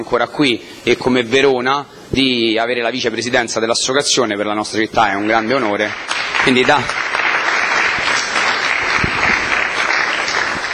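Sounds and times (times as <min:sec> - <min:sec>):
speech: 0:00.0 - 0:07.1
audience applause: 0:05.6 - 0:10.7.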